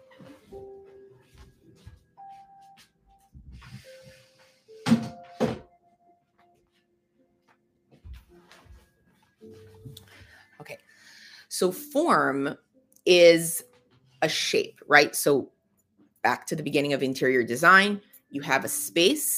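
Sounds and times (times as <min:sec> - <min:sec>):
footsteps: 0:00.0 - 0:05.6, 0:07.4 - 0:10.5
speech: 0:11.5 - 0:15.6, 0:16.2 - 0:19.3.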